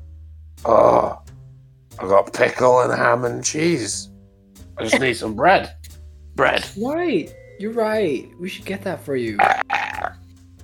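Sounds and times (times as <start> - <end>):
speech: 0.6 - 1.2, 2.0 - 4.1, 4.8 - 9.7
loud guttural burp: 9.4 - 10.2.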